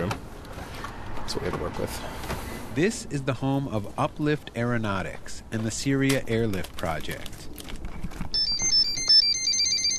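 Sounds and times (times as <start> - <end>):
speech: 1.3 - 7.4
drone autopilot two-tone electronic beeps: 8.4 - 9.9.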